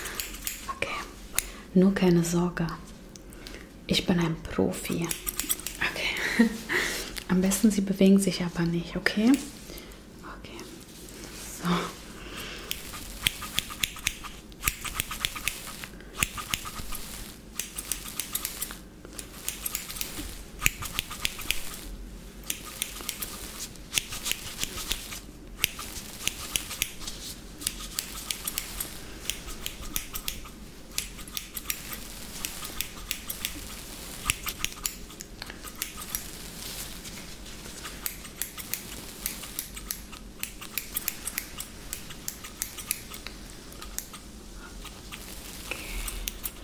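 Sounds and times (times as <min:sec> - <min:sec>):
scissors cutting hair during a haircut: 0:00.0 - 0:01.6, 0:04.8 - 0:06.0, 0:12.6 - 0:37.1, 0:37.7 - 0:46.6
soft hiss: 0:00.0 - 0:46.6
speech: 0:01.8 - 0:02.9, 0:03.9 - 0:05.3, 0:06.4 - 0:06.7, 0:07.3 - 0:09.6.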